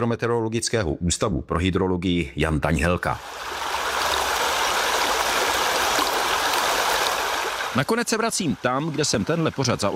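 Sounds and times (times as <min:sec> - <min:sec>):
speech: 0:00.0 - 0:03.6, 0:07.7 - 0:09.9
river water rushing past the bank with faint bubbling: 0:03.2 - 0:09.9.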